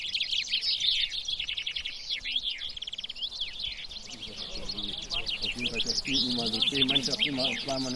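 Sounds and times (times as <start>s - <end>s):
finches singing in a competitive finch singing contest: 0.0s - 7.9s.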